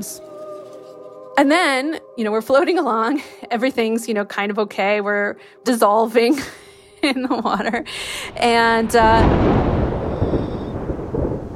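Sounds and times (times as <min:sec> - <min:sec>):
speech: 0:00.0 - 0:00.3, 0:01.4 - 0:09.6
rolling thunder: 0:07.5 - 0:11.5
rain starting: 0:07.9 - 0:11.5.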